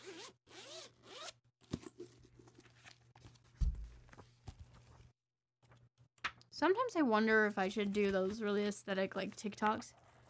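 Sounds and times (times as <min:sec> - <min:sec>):
zipper on a notebook pulled open: 0:00.0 - 0:01.4
speech: 0:06.6 - 0:10.0.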